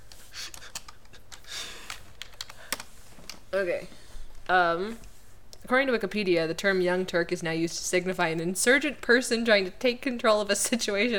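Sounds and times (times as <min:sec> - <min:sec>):
fingers typing on a computer keyboard: 0:00.4 - 0:03.4
speech: 0:03.5 - 0:11.1.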